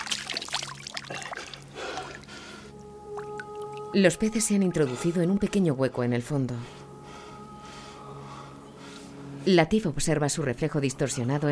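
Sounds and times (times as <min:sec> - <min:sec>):
water splashed onto a face at a small pond: 0:00.0 - 0:02.2
soft rushing and trickling water with scattered drips: 0:00.0 - 0:03.9
speech: 0:03.9 - 0:06.8, 0:09.5 - 0:11.4.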